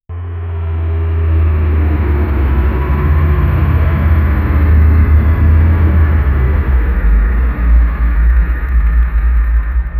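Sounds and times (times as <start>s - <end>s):
massive ancient machinery: 0.1s - 9.9s.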